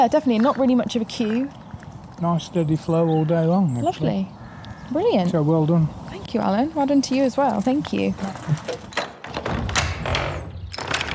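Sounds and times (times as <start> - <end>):
speech: 0.0 - 1.6, 2.2 - 9.0
front door being pulled shut: 7.9 - 11.1.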